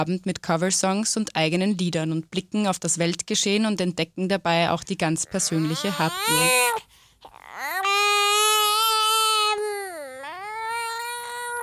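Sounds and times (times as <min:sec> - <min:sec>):
speech: 0:00.0 - 0:06.9
baby crying: 0:05.2 - 0:11.6.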